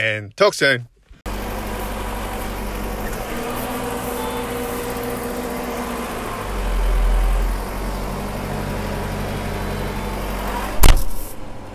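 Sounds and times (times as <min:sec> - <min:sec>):
speech: 0:00.0 - 0:00.9
tractor engine rumbling: 0:01.2 - 0:11.7
sharp clunk: 0:10.8 - 0:11.3.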